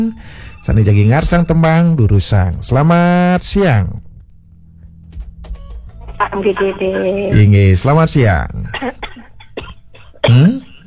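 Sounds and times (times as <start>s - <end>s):
speech: 0.0s - 4.1s, 6.2s - 9.0s, 10.2s - 10.6s
caller coughing on a telephone line: 8.7s - 10.8s.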